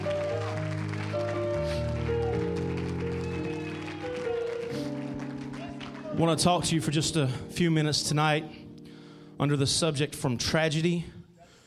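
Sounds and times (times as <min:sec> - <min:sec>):
audience clapping steadily: 0:00.0 - 0:06.6
loud sustained organ-like chords: 0:00.0 - 0:10.0
speech: 0:06.2 - 0:08.6, 0:09.4 - 0:11.2.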